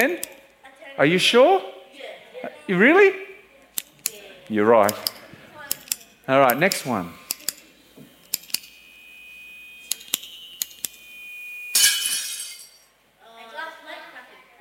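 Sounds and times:
speech: 0:00.0 - 0:00.3, 0:01.0 - 0:03.3, 0:04.5 - 0:05.1, 0:06.3 - 0:07.2
glassy clinks: 0:11.6 - 0:13.0
glass plate shattering: 0:11.7 - 0:12.9.

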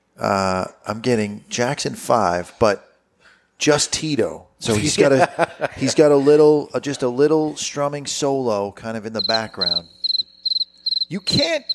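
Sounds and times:
speech: 0:00.2 - 0:02.9, 0:03.6 - 0:10.0, 0:11.1 - 0:11.7
laughter: 0:04.7 - 0:07.5
crickets chirping: 0:09.2 - 0:11.7.

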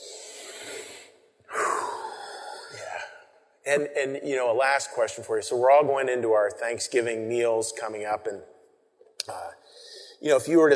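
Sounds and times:
several people taking a big breath together: 0:00.0 - 0:03.4, 0:09.6 - 0:10.2
speech: 0:03.7 - 0:08.6, 0:10.2 - 0:10.7.

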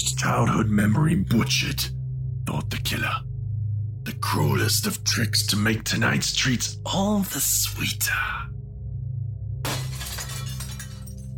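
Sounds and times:
speech: 0:00.0 - 0:03.3, 0:04.0 - 0:08.5
low steady hum: 0:00.0 - 0:11.3
glass shattering: 0:09.7 - 0:11.3.

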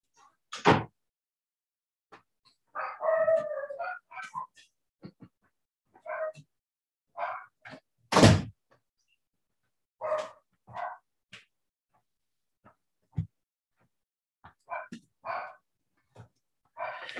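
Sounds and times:
two small guard dogs barking and yipping: 0:02.7 - 0:04.6, 0:06.0 - 0:06.4, 0:07.2 - 0:07.6, 0:10.0 - 0:11.1, 0:14.6 - 0:15.6, 0:16.8 - 0:17.1.

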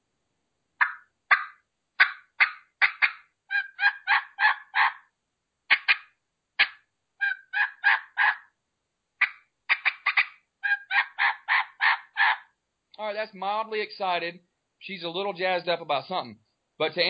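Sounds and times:
turkey call cutting and yelping: 0:00.8 - 0:05.1, 0:05.7 - 0:08.6, 0:09.2 - 0:12.6
speech: 0:13.2 - 0:17.0.

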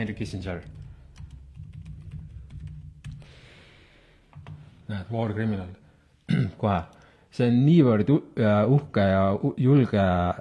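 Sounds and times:
speech: 0:00.0 - 0:00.8, 0:04.9 - 0:10.3
typing on a computer keyboard: 0:00.6 - 0:03.2.

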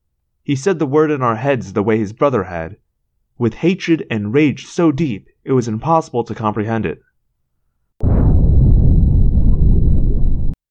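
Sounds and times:
speech: 0:00.4 - 0:02.8, 0:03.4 - 0:07.1
loud explosion with deep heavy rumble: 0:08.0 - 0:10.6.

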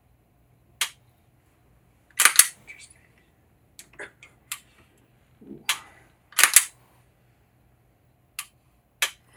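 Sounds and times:
faint low hum: 0:00.0 - 0:09.3
handgun trigger dry-fire clicks and reset: 0:02.2 - 0:02.5, 0:06.4 - 0:06.7.

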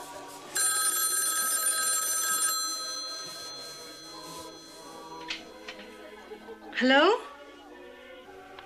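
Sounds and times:
telephone bell ringing: 0:00.6 - 0:05.8
laughter: 0:05.7 - 0:08.5
speech: 0:06.8 - 0:07.3.

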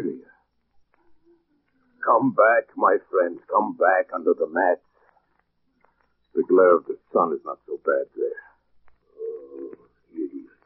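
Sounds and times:
speech: 0:02.1 - 0:04.9, 0:06.4 - 0:08.5
parrot giving low throaty cooing calls: 0:09.1 - 0:10.5.

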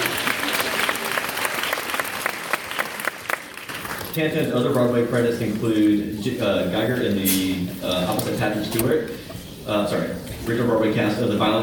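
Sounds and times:
audience applause: 0:00.0 - 0:04.1
speech: 0:04.2 - 0:11.6.

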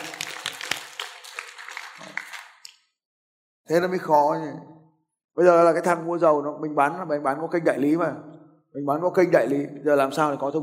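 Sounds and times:
audience applause: 0:00.0 - 0:02.7
speech: 0:03.7 - 0:04.8, 0:05.4 - 0:10.6.

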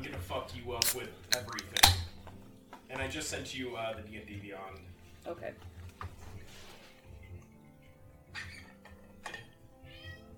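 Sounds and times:
speech: 0:00.3 - 0:02.1, 0:02.9 - 0:05.8
cat meowing: 0:09.8 - 0:10.3.

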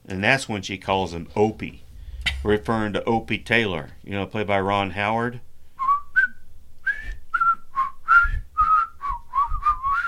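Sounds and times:
speech: 0:00.1 - 0:01.8, 0:02.4 - 0:05.5
soft low thumps: 0:00.8 - 0:05.6
two people whistling a bouncy tune: 0:05.8 - 0:10.0.

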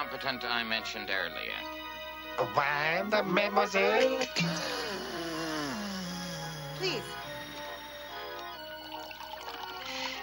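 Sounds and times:
speech: 0:00.1 - 0:01.8, 0:02.4 - 0:05.4, 0:06.8 - 0:07.2
wine being poured into a glass: 0:07.5 - 0:10.2.

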